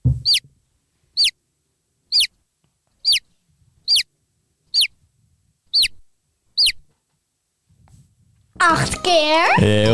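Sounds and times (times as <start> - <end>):
baby chick peeping: 0.1 - 0.5, 1.1 - 1.4, 2.1 - 4.1, 4.7 - 5.0, 5.7 - 6.9
speech: 8.6 - 9.9.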